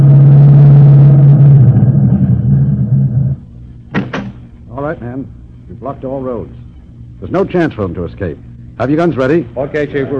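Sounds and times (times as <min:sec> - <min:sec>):
car engine rumbling as the car slows and stops: 0:00.0 - 0:03.8
speech: 0:06.0 - 0:10.1.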